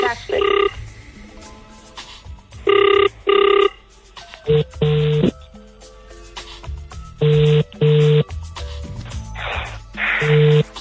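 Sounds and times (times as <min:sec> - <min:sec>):
telephone ringback tone on an outgoing call: 0:00.0 - 0:00.8, 0:02.7 - 0:03.8, 0:04.5 - 0:05.4, 0:07.2 - 0:08.3, 0:10.2 - 0:10.7.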